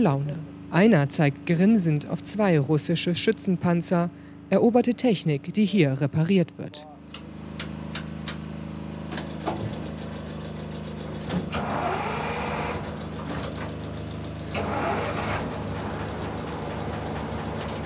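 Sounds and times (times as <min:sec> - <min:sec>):
speech: 0:00.0 - 0:07.2
old captured Russian infantry fighting vehicle engine starting and revving in Izium: 0:07.2 - 0:17.8.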